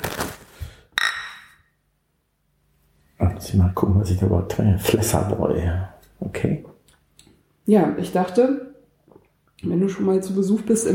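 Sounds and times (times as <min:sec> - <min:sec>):
beer glasses clinking in a toast: 0:01.0 - 0:01.6
speech: 0:03.4 - 0:06.7, 0:07.7 - 0:08.7, 0:09.6 - 0:10.9.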